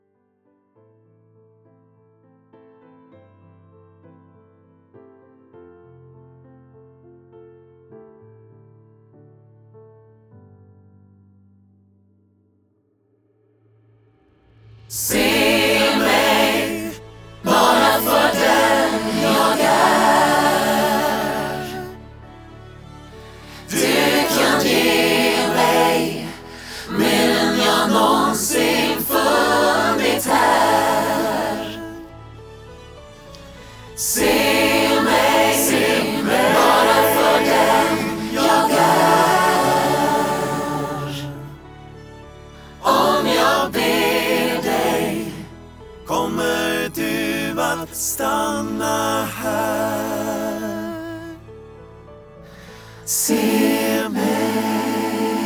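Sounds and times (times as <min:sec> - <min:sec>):
reference choir singing: 0:14.9 - 0:32.2, 0:33.9 - 0:41.8, 0:42.6 - 0:51.5, 0:52.8 - 0:55.4
sing-along instrumental accompaniment for choir: 0:15.0 - 0:55.4.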